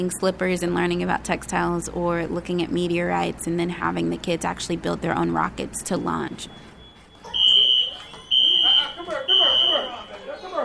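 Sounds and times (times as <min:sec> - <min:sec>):
speech: 0:00.0 - 0:06.7
fire alarm beeping in a community center: 0:06.4 - 0:10.2
crowd of voices chattering: 0:07.2 - 0:10.6.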